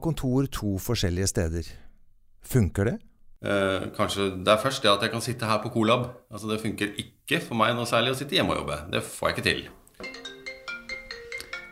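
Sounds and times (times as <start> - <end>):
speech: 0.0 - 10.2
mobile phone ringtone: 10.0 - 11.7.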